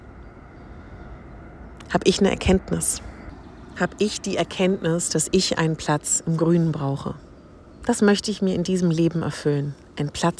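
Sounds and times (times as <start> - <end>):
train rumbling past a lake: 0.0 - 7.9
speech: 1.9 - 3.1, 3.8 - 10.3.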